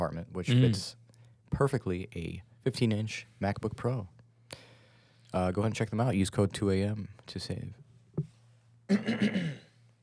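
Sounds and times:
speech: 0:00.0 - 0:04.6, 0:05.3 - 0:08.3, 0:08.9 - 0:09.6
faint steady hum: 0:00.0 - 0:10.0
throat clearing: 0:00.5 - 0:00.8, 0:08.9 - 0:09.7.

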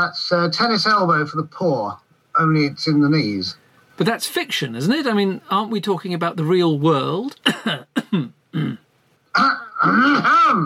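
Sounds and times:
speech: 0:00.0 - 0:08.8, 0:09.4 - 0:10.6
harsh coughs: 0:07.4 - 0:10.4
long rasping throat-clearing hack: 0:07.6 - 0:10.6.

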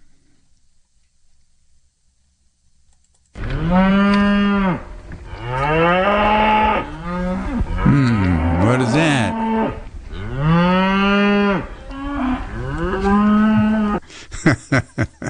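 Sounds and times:
sharp clicks: 0:02.9 - 0:04.2
herd of cows walking up a road mooing: 0:03.4 - 0:14.0
person speaking: 0:07.9 - 0:09.4
laughter: 0:14.2 - 0:15.2.

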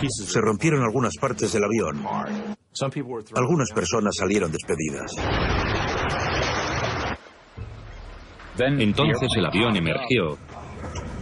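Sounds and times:
speech: 0:00.0 - 0:06.5, 0:08.6 - 0:11.0
water waves washing and churning: 0:04.8 - 0:09.3.

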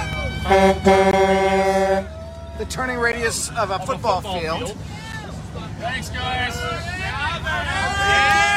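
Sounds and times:
truck horn blasts: 0:00.0 - 0:02.1
speech: 0:00.5 - 0:01.4, 0:02.6 - 0:08.4.

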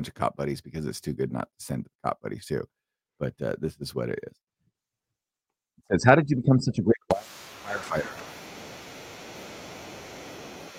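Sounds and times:
speech: 0:00.0 - 0:04.4, 0:05.9 - 0:07.2
static hiss from failed clip playback: 0:07.1 - 0:10.7.

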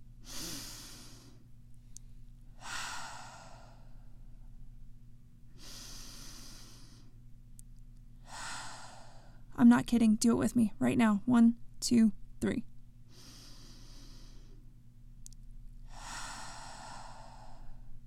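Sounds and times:
low steady hum: 0:00.0 - 0:18.0
slow deep breathing in and out: 0:00.2 - 0:04.6, 0:05.5 - 0:07.2, 0:08.2 - 0:09.5, 0:13.1 - 0:14.7, 0:15.8 - 0:18.0
speech: 0:09.6 - 0:12.7.

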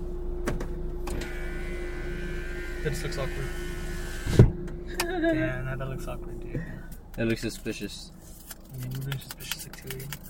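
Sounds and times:
car power window motor rolling the glass up: 0:00.4 - 0:04.8
speech: 0:02.8 - 0:03.7, 0:05.2 - 0:10.2.

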